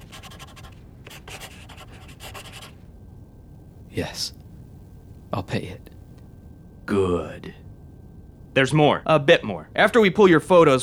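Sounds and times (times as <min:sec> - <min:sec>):
pen scratching across paper writing a cost figure: 0:00.0 - 0:02.8
low steady hum: 0:00.0 - 0:10.8
speech: 0:04.0 - 0:04.4, 0:05.3 - 0:05.9, 0:06.9 - 0:07.6, 0:08.6 - 0:10.8.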